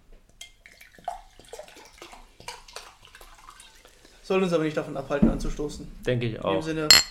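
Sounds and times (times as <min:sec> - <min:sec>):
water being poured into a glass: 0:00.4 - 0:04.3
speech: 0:04.3 - 0:07.0.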